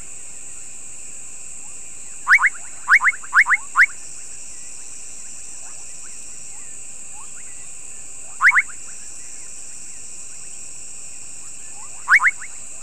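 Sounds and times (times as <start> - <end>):
bubbling kassina (Kassina senegalensis) short popping rising calls: 2.3 - 4.0, 8.2 - 9.0, 11.7 - 12.6.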